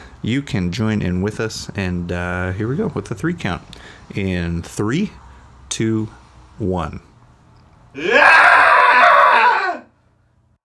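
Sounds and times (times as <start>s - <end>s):
speech: 0.2s - 7.1s, 7.9s - 8.3s
person screaming: 8.0s - 9.9s.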